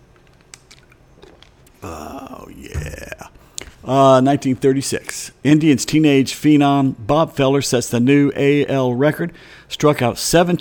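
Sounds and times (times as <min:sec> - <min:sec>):
person sipping Gatorade sports drink: 0:01.2 - 0:03.8
speech: 0:03.8 - 0:10.5.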